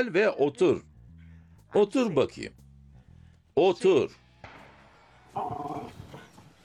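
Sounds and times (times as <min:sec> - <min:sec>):
speech: 0:00.0 - 0:00.9, 0:01.7 - 0:02.6, 0:03.6 - 0:04.2, 0:05.3 - 0:06.0
dog grumbling: 0:05.4 - 0:06.3.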